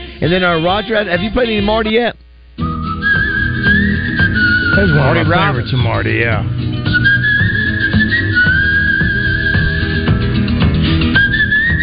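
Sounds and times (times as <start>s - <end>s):
speech: 0.2s - 2.7s, 4.8s - 6.9s
man whistling a smooth sustained melody: 2.6s - 5.8s, 6.8s - 10.4s, 11.0s - 11.8s
full band backing with guitars and rhythm: 2.6s - 11.8s.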